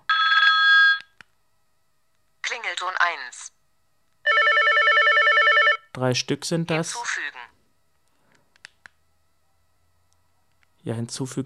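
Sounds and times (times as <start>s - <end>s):
bright electronic phone ringtone being previewed: 0.1s - 1.0s, 4.3s - 5.9s
speech: 2.8s - 3.6s, 6.0s - 7.4s, 10.8s - 11.4s.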